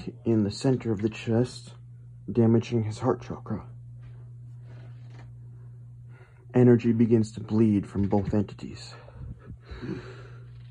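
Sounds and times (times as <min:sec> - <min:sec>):
speech: 0:00.0 - 0:03.7, 0:06.5 - 0:09.0, 0:09.7 - 0:10.2
steady low hum: 0:00.0 - 0:10.7
raspy gasping breath: 0:09.0 - 0:10.6.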